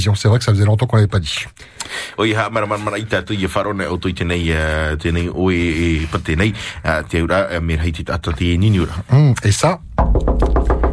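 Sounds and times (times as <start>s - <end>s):
speech: 0.0s - 10.7s
knocking on a door: 10.0s - 10.9s.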